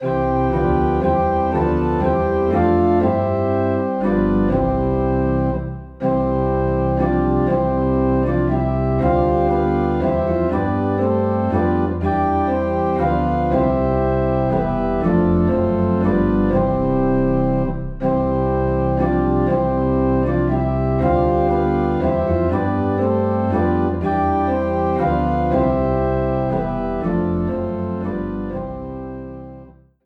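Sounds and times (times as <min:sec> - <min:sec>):
low organ note in C: 0:00.0 - 0:29.8.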